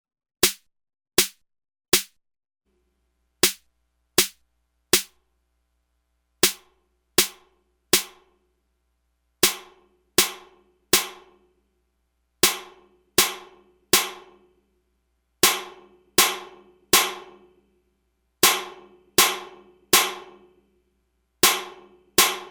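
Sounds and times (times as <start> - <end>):
808 drum machine snare: 0.4 - 2.2, 3.4 - 5.2, 6.4 - 8.3, 9.4 - 11.4, 12.4 - 14.5, 18.4 - 20.5, 21.4 - 22.4.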